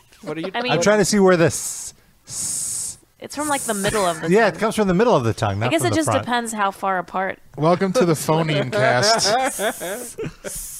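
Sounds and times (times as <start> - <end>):
speech: 0.2 - 2.5, 3.2 - 10.7
voice imitating a snake's hiss: 1.5 - 4.3, 9.5 - 10.7
laughter: 8.3 - 10.6.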